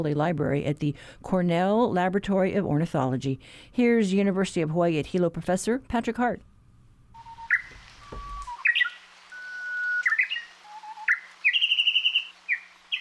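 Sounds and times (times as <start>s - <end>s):
speech: 0.0s - 6.5s
Japanese bush warbler song: 7.2s - 13.0s.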